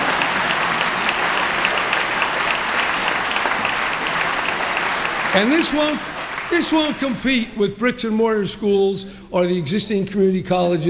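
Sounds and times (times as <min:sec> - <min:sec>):
large audience applauding during a speech: 0:00.0 - 0:07.4
speech: 0:05.4 - 0:10.8.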